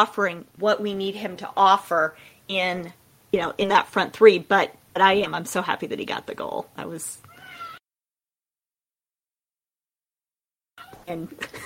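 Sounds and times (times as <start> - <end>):
speech: 0.0 - 7.3, 11.1 - 11.6
cat meowing: 7.3 - 7.8.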